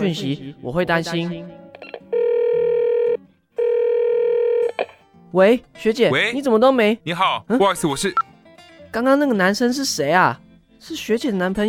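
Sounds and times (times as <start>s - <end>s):
speech: 0.0s - 2.0s, 5.3s - 8.2s, 8.9s - 11.6s
phone call ringing tone with long steady electronic buzzes: 1.8s - 5.0s.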